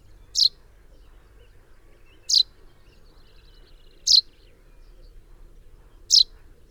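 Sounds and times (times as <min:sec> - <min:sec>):
common chaffinch Fringilla coelebs calling with bright high notes: 0:00.3 - 0:00.5, 0:02.3 - 0:02.5, 0:04.1 - 0:04.3, 0:06.1 - 0:06.3.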